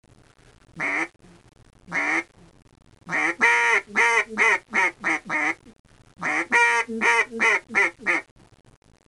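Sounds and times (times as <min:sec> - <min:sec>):
duck call imitating a lone female duck: 0:00.8 - 0:01.1, 0:01.9 - 0:02.3, 0:03.1 - 0:05.6, 0:06.2 - 0:08.3.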